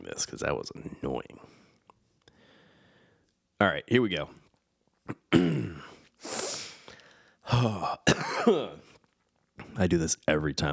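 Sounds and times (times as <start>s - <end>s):
speech: 0.1s - 1.6s, 3.6s - 4.4s, 7.5s - 8.8s, 9.8s - 10.7s
person clearing throat: 5.1s - 6.0s, 7.5s - 8.9s
harsh exhaled cough: 5.1s - 6.6s, 7.8s - 8.9s.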